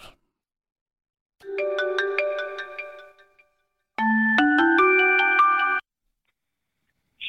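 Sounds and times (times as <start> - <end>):
phone ringing with an electronic melodic ringtone: 1.4 - 5.9.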